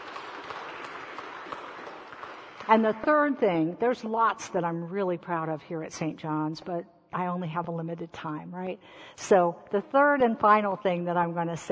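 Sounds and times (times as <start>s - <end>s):
congregation applauding: 0.0s - 2.7s
speech: 2.7s - 11.7s.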